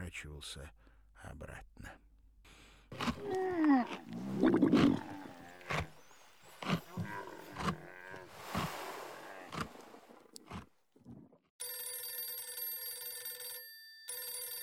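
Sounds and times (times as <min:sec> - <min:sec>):
speech: 0:00.1 - 0:02.1, 0:02.9 - 0:05.1
loud animal roars and growls: 0:02.9 - 0:11.2
internal telephone ringing in an apartment: 0:11.6 - 0:14.6.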